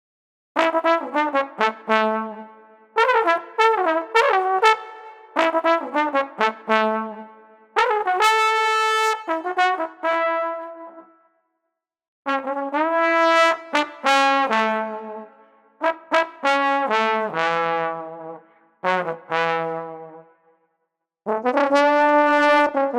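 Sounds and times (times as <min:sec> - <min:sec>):
jovial trombone: 0:00.6 - 0:11.0, 0:12.3 - 0:20.2, 0:21.3 - 0:22.9.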